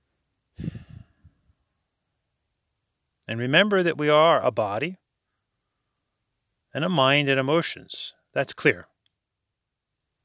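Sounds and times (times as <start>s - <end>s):
soft breathy exhale during a guided yoga meditation: 0.6s - 1.5s
speech: 3.3s - 5.0s, 6.8s - 8.9s.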